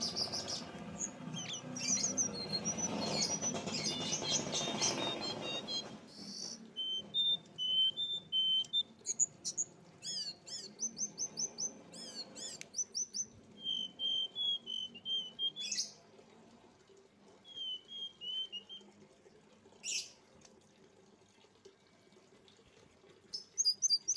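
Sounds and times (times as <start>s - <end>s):
streaked spiderhunter singing quick sharp chirps and thin high whistles: 0.0s - 16.0s, 17.4s - 18.8s, 23.4s - 24.1s.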